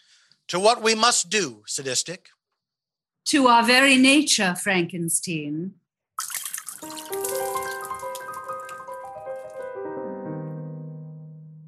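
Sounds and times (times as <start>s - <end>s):
speech: 0.5s - 2.4s, 3.2s - 5.8s
martinis poured into a glass: 6.2s - 9.7s.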